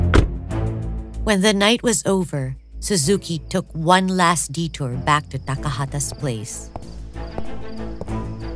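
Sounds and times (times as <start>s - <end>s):
heavy footsteps walking up to a doorstep: 0.1s - 0.5s, 5.9s - 8.5s
speech: 1.3s - 6.9s.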